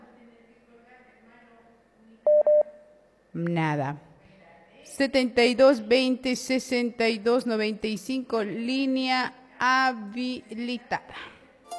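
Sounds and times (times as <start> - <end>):
touch-tone keypad beeps while dialing a telephone: 2.3 - 2.7
speech: 3.4 - 4.1, 4.8 - 11.3.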